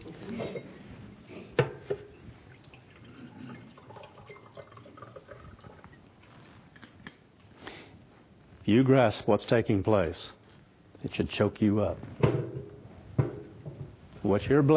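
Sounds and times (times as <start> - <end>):
water pouring for a drink: 2.1 - 6.3
speech: 8.7 - 10.4, 11.0 - 12.3, 14.3 - 14.7.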